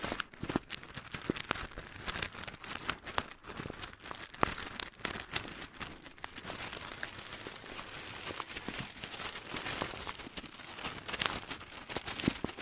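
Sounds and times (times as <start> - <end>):
brain scratching: 0.0 - 12.6
crunchy slime: 0.0 - 12.6.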